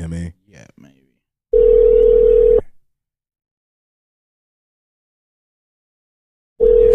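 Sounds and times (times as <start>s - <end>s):
outgoing phone call ringback tone: 1.5s - 2.6s, 6.6s - 6.9s.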